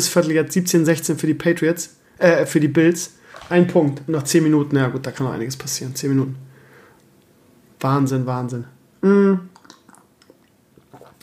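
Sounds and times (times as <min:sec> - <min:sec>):
speech: 0:00.0 - 0:06.5, 0:07.8 - 0:09.5
slurping tea: 0:09.6 - 0:11.2.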